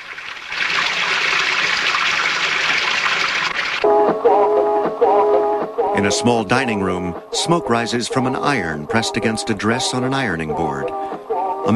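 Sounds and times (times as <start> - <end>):
water spilling from an overflowing sink: 0.0 - 3.8
faint tonal music: 3.8 - 11.7
speech: 6.0 - 11.7.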